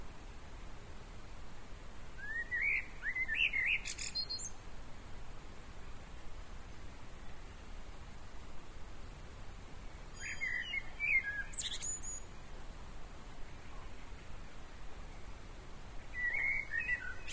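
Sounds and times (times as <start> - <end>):
background noise: 0.0 - 17.3
common blackbird Turdus merula warbling: 2.2 - 4.6, 10.2 - 12.2, 16.1 - 17.3.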